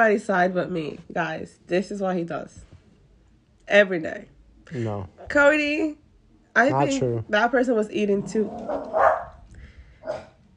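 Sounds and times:
speech: 0.0s - 2.7s, 3.7s - 6.0s, 6.6s - 9.0s
dog whining: 8.4s - 9.4s
dog barking short sharp woofs: 8.6s - 9.4s, 10.0s - 10.4s.

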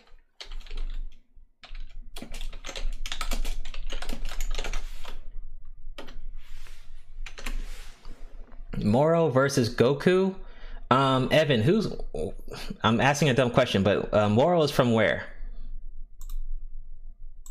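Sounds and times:
rapid typing on a computer keyboard: 0.0s - 5.2s
speech: 8.8s - 15.3s.

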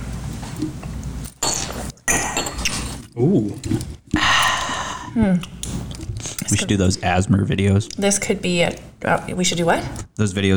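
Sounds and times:
speech: 0.6s - 0.9s, 3.2s - 4.3s, 6.6s - 10.5s
glasses clinking in a toast: 1.3s - 3.0s.

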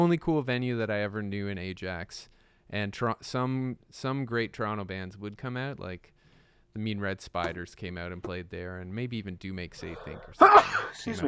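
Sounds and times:
speech: 0.0s - 6.2s, 6.8s - 11.2s
loud sharp sneeze overloading the microphone: 10.0s - 11.2s.

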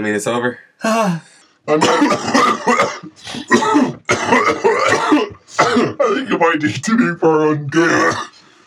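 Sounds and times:
speech: 0.0s - 8.3s
hard coughing fit: 1.7s - 7.1s, 7.8s - 8.4s.

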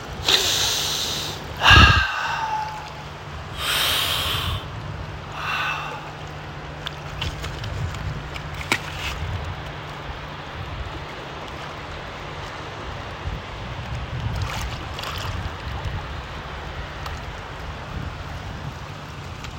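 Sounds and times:
low steady hum: 0.0s - 19.5s
person breathing deeply in through the nose and out through the mouth: 0.2s - 6.3s.

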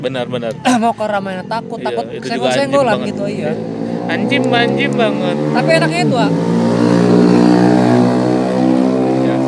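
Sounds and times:
speech: 0.0s - 7.0s
motorcycle engine revving loudly: 2.8s - 9.4s.

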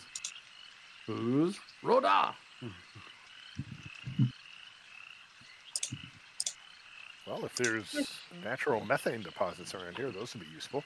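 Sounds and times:
frogs of unusual size croaking in deep throaty bursts: 0.0s - 10.8s
speech: 1.1s - 3.1s, 7.3s - 10.8s
sharp high chirps: 5.8s - 6.6s.

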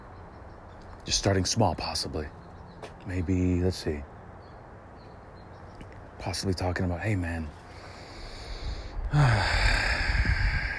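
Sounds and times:
speech: 1.0s - 2.4s, 3.0s - 4.1s, 6.2s - 7.6s, 9.1s - 9.7s
person breathing in deeply: 7.7s - 10.7s.

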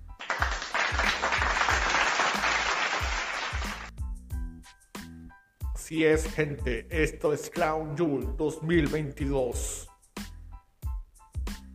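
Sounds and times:
crowd applause sound effect: 0.2s - 3.9s
speech: 5.9s - 9.8s.

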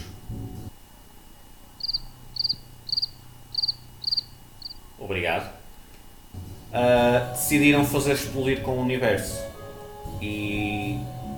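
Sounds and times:
cricket chirping in a steady rhythm: 1.8s - 5.0s
speech: 5.0s - 5.6s, 6.7s - 9.4s, 10.2s - 11.1s.

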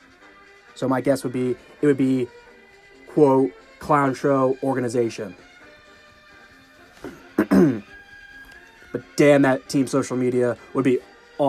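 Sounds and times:
speech: 0.8s - 2.4s, 3.2s - 5.5s, 9.2s - 11.4s
single cough: 7.0s - 7.9s.

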